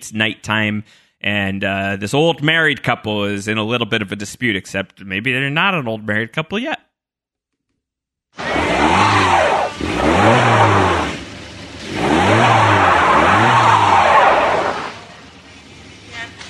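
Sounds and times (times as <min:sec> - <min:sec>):
speech: 0:00.0 - 0:06.9
car engine revving stuck in snow at night: 0:08.4 - 0:16.1
car wheels spinning in snow: 0:08.4 - 0:16.4.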